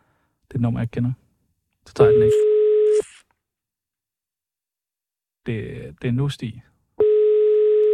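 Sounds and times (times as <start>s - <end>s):
speech: 0.6s - 1.2s, 1.8s - 2.5s, 5.5s - 6.7s
telephone ringing with an electronic beep: 2.0s - 3.0s, 7.0s - 7.9s.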